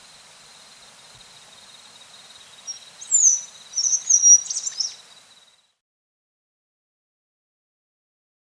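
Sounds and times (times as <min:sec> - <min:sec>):
bluish flowerpiercer twittering in South America: 0:00.0 - 0:05.4
faint steady tone: 0:00.0 - 0:05.5.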